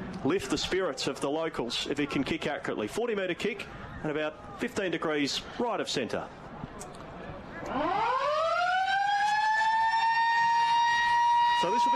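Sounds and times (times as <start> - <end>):
speech: 0.2 - 6.9, 7.7 - 8.2, 11.6 - 11.9
siren ending the first quarter of a football match: 7.7 - 11.9.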